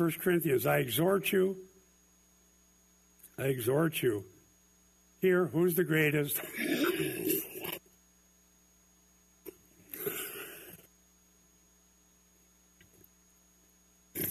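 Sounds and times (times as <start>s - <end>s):
speech: 0.0s - 1.7s, 3.4s - 4.4s, 5.2s - 7.3s
harsh coughing and throat clearing: 6.4s - 7.8s.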